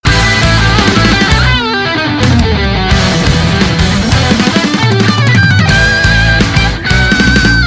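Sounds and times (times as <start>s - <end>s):
victory outro music: 0.1s - 7.6s.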